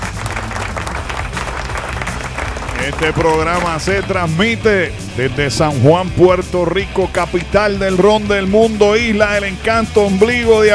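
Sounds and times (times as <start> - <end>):
applause of many hands clapping: 0.0 - 4.6
speech: 2.8 - 10.7.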